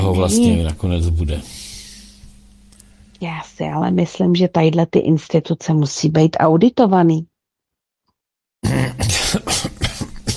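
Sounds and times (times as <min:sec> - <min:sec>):
speech: 0:00.1 - 0:01.7, 0:03.2 - 0:07.3, 0:08.6 - 0:09.8
choking cough with harsh hacking coughs: 0:08.6 - 0:10.3.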